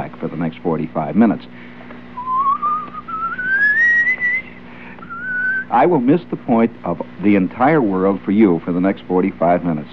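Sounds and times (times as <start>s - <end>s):
low steady hum: 0.0s - 9.9s
speech: 0.1s - 1.8s, 5.7s - 9.9s
person whistling: 2.2s - 5.7s.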